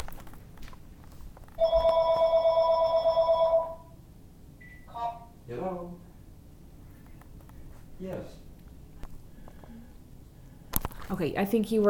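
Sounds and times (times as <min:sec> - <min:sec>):
quiet noise: 0:00.0 - 0:11.8
telephone ringing: 0:01.6 - 0:04.0
speech: 0:11.1 - 0:11.8.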